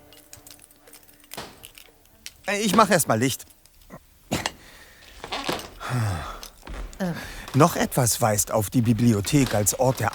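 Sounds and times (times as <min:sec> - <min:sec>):
keys on a ring jingling in a hand: 0:00.0 - 0:02.5
speech: 0:02.5 - 0:03.6, 0:07.6 - 0:10.1.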